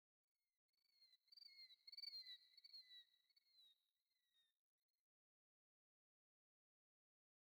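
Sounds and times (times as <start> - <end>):
songbirds: 1.0 - 4.5.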